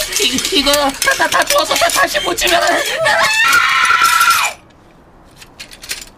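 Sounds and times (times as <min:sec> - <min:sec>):
speech: 0:00.2 - 0:04.3
woman screaming loudly and shrilly: 0:02.1 - 0:04.7.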